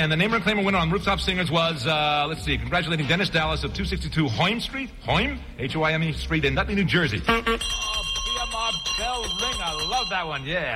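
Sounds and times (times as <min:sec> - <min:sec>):
speech: 0:00.0 - 0:10.7
bell ringing: 0:07.5 - 0:10.7.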